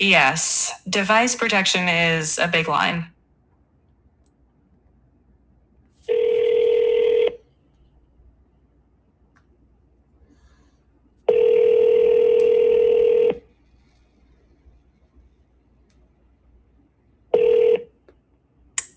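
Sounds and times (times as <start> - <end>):
speech: 0.0 - 3.2
telephone ringback tones of a simulated demo call: 6.1 - 7.4, 11.3 - 13.4, 17.3 - 17.9.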